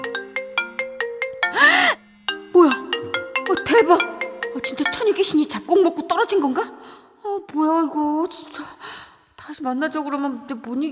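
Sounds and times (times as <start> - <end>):
phone ringtone of an incoming call: 0.0 - 6.0
speech: 3.8 - 8.9, 9.5 - 10.9.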